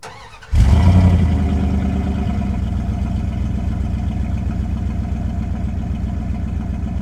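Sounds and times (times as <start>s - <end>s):
Dakota truck engine starting and idling: 0.0s - 7.0s.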